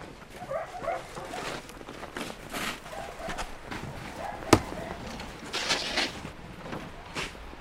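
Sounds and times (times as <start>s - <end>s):
load of snow hitting a wheelbarrow with a clank: 0.0s - 7.6s
shovel digging and scraping into snow: 1.2s - 6.4s.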